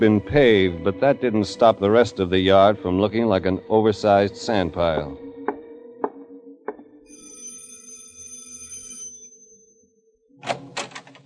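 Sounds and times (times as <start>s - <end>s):
speech: 0.0s - 5.2s
sustained ringing tone: 7.0s - 10.3s
front door lock clicks of a two-story stucco house: 10.4s - 11.2s.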